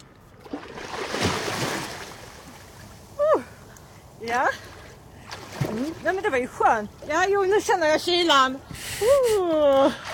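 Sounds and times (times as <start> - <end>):
body plunging into water with a rushing splash: 0.4 - 2.7, 4.6 - 6.1
speech: 4.2 - 4.7, 5.8 - 10.1.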